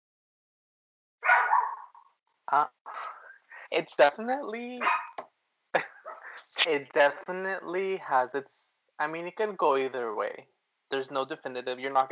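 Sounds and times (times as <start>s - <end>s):
pet dog barking: 1.2s - 2.0s, 4.8s - 5.2s
speech: 2.5s - 3.0s, 3.7s - 5.0s, 6.6s - 12.1s.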